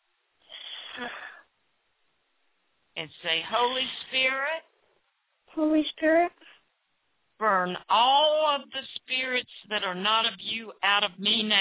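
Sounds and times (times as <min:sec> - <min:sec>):
deep breath drawn in during a prayer: 0:00.4 - 0:01.5
speech: 0:01.0 - 0:01.2, 0:03.0 - 0:04.7, 0:05.6 - 0:06.4, 0:07.4 - 0:11.6.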